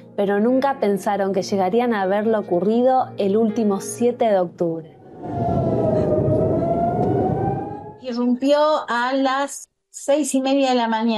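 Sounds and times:
speech: 0.2 - 5.6, 8.0 - 11.1
air raid warning siren for incoming missiles wailing: 4.8 - 8.4
dense rumbling background: 4.9 - 8.2.

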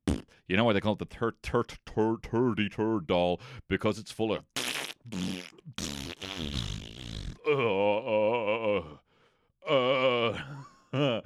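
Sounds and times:
loud drawn-out buzzing fart noises with wobbling pitch: 0.0 - 0.2, 4.6 - 7.4
speech: 0.5 - 6.8, 7.4 - 9.0
breathy vocal sounds: 6.5 - 11.2.

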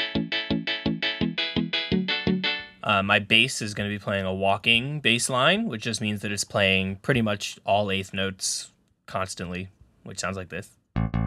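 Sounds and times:
ska guitar strumming with muted downstroke and ringing unmuted upstroke: 0.0 - 2.8, 11.0 - 11.2
speech: 2.8 - 10.8.

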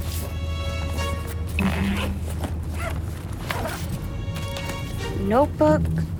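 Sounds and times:
backpack zipper being pulled open: 0.0 - 0.3, 0.9 - 5.0
rustling and shuffling of backpack contents being checked: 0.0 - 5.4
speech: 1.6 - 2.3, 5.3 - 6.1.

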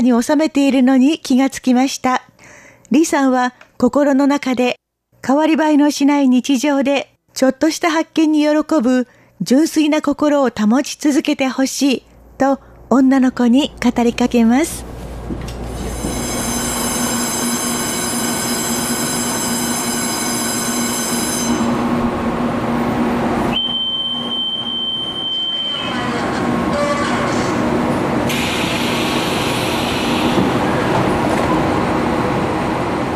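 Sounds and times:
speech: 0.0 - 2.3, 2.9 - 15.5
local train idling at a station: 12.8 - 23.6, 25.9 - 33.1
high whistle-like tone: 23.5 - 25.9.

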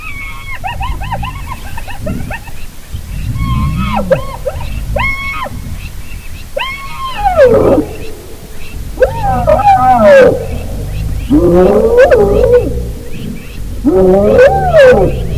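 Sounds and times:
hyena giggling and contact call: 0.0 - 15.3
low grumbling from another hyena pack member: 0.6 - 6.2, 7.2 - 15.3.

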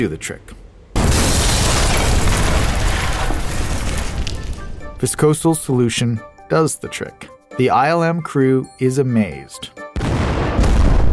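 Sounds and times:
speech: 0.0 - 0.6, 5.0 - 9.8
large explosion of magnesium and gasoline charges set off electronically by squibs: 1.0 - 4.8, 10.0 - 11.1.

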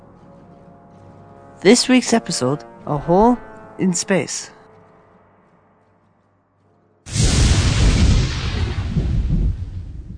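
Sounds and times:
speech: 1.6 - 4.6
thunder crack and rumble from a lightning storm: 7.1 - 10.1.

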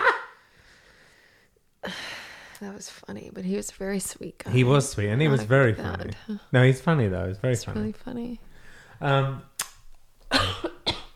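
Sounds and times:
speech: 2.6 - 9.5
person coughing: 10.3 - 11.1.

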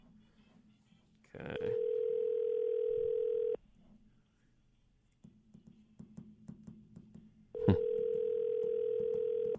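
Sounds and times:
faint hold music over a telephone line: 0.0 - 6.2
speech: 1.4 - 1.9
outgoing telephone call electronic ring tone: 1.7 - 3.6, 7.6 - 9.5.

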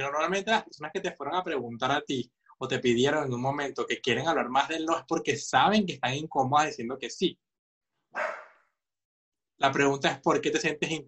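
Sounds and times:
speech: 0.0 - 7.4, 8.1 - 8.4, 9.6 - 11.0
dog barking: 8.2 - 8.6.

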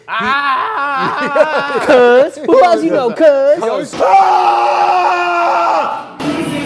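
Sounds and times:
person imitating the fierce scream of a basketball player: 0.0 - 2.0, 4.0 - 6.0
laughter: 0.0 - 3.6
speech: 0.1 - 5.2.

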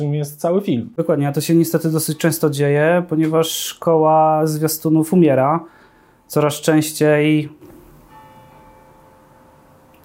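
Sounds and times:
speech: 0.0 - 7.7
soft constant hiss: 0.0 - 10.0
bell ringing: 7.7 - 10.0.

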